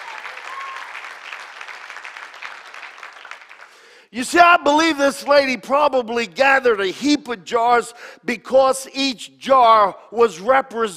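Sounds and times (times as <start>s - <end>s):
church congregation applauding: 0.0s - 4.1s
speech: 4.1s - 10.9s.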